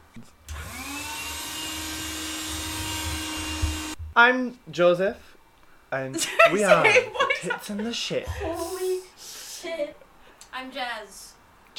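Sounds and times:
speech: 0.2s - 0.6s, 4.2s - 5.3s, 5.9s - 8.8s, 10.6s - 11.7s
vacuum cleaner motor whining with rushing air: 0.5s - 4.0s
laughter: 6.2s - 9.0s.

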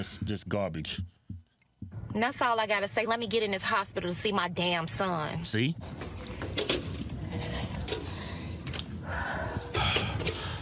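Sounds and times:
speech: 0.0s - 1.2s, 2.1s - 7.0s
woman breathing hard and gasping: 5.9s - 10.6s.

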